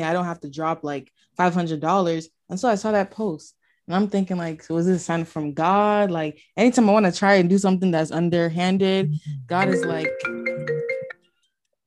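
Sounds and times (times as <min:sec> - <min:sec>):
speech: 0:00.0 - 0:10.5
phone ringtone: 0:09.5 - 0:11.5.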